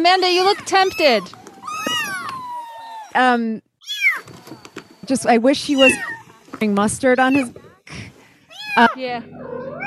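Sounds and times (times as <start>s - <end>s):
speech: 0.0s - 1.4s, 3.1s - 4.4s, 5.1s - 8.0s, 8.8s - 9.6s
cat meowing and yowling: 0.5s - 3.2s, 5.7s - 6.2s, 8.5s - 9.8s.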